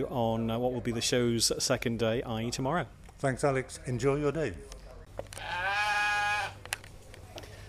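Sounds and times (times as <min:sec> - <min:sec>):
speech: 0:00.0 - 0:05.6
sheep bleating at an agricultural show: 0:05.4 - 0:06.6.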